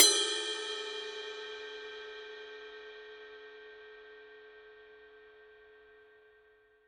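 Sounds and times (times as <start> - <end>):
heavy Paiste 2002 ride cymbal bell: 0.0 - 4.7.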